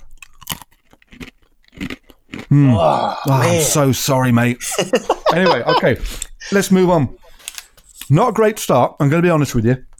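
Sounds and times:
crunching and chewing a pretzel: 0:00.0 - 0:03.4
speech: 0:02.5 - 0:07.2, 0:08.1 - 0:09.9
laughter: 0:04.6 - 0:06.7.

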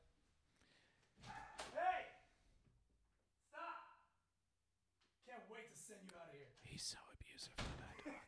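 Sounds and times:
dog barking and yelping: 0:01.2 - 0:01.8
man shouting at a dog: 0:01.3 - 0:02.2, 0:03.5 - 0:04.2
speech: 0:05.6 - 0:08.2.

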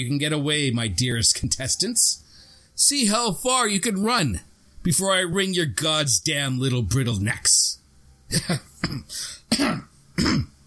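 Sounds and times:
speech: 0:00.0 - 0:02.2, 0:02.8 - 0:10.5
sheepish short coughs with throat clearing: 0:08.3 - 0:10.6.

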